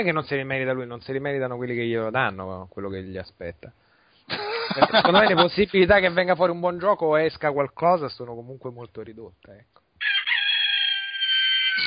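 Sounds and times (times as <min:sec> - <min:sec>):
speech: 0:00.0 - 0:09.8
laughter: 0:04.3 - 0:05.6
rooster crowing from a small object kept at home: 0:10.0 - 0:11.8.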